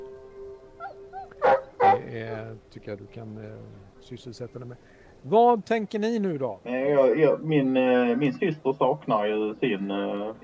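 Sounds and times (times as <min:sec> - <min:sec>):
faint steady hum: 0:00.0 - 0:10.4
dog whining softly: 0:00.8 - 0:02.1
speech: 0:02.1 - 0:10.4.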